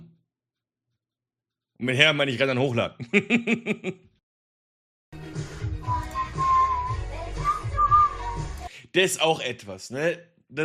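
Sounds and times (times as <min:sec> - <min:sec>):
speech: 0:01.8 - 0:04.1, 0:09.0 - 0:10.6
laughter: 0:03.0 - 0:04.0
person whistling a short wavering tune during a livestream: 0:05.8 - 0:08.6.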